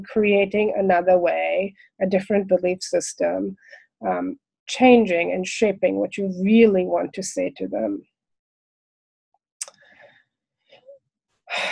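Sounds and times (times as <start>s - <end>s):
speech: 0.0s - 8.1s
deep breath: 9.7s - 10.8s.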